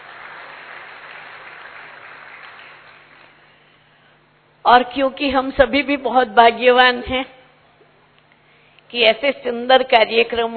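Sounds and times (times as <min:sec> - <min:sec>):
crowd at a youth retreat applauding: 0:00.0 - 0:03.4
speech: 0:04.7 - 0:07.4, 0:08.9 - 0:10.5.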